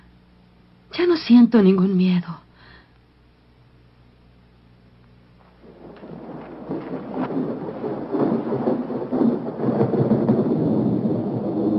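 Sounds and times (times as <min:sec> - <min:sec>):
speech: 0:00.9 - 0:02.4
steady rain: 0:05.3 - 0:11.7
rolling thunder of an approaching thunderstorm: 0:05.4 - 0:11.7.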